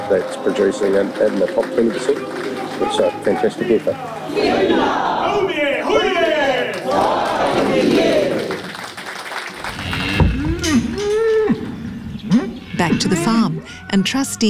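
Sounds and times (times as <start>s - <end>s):
continuous noise: 0.0s - 14.4s
speech: 0.1s - 6.1s, 12.8s - 14.4s
cattle mooing on a bull farm: 9.6s - 14.3s.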